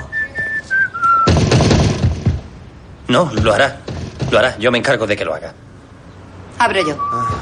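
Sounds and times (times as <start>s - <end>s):
person whistling a short descending tune while approaching: 0.0s - 1.3s, 6.9s - 7.4s
loud broadband clattering crash: 1.2s - 2.7s, 3.3s - 4.7s
speech: 3.1s - 5.6s, 6.6s - 7.4s.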